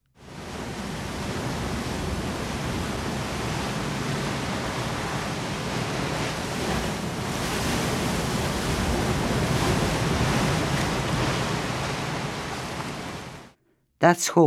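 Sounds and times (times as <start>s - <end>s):
sea surf washing onto the shore at Aberaeron: 0.2s - 13.6s
speech: 14.0s - 14.4s.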